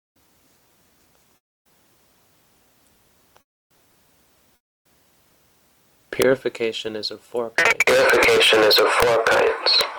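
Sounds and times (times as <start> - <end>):
speech: 6.2 - 9.9
harsh echo of a man's voice feeding back over a call line: 7.5 - 9.9.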